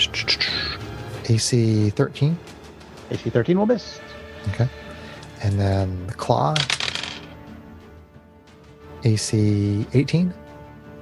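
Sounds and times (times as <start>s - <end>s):
speech: 1.3s - 2.5s, 3.1s - 4.8s, 5.4s - 6.8s, 9.0s - 10.4s
dice tumbling across a hard tabletop: 6.4s - 7.4s.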